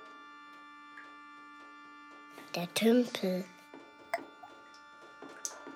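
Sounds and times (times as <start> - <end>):
speech: 2.5 - 3.5
water dripping in single drops: 4.1 - 4.5.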